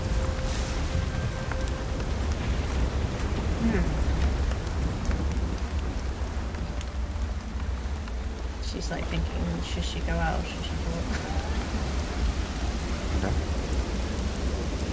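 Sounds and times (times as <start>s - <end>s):
steady rain falling in the dark: 0.0s - 14.9s
speech: 3.6s - 4.0s, 8.8s - 12.1s.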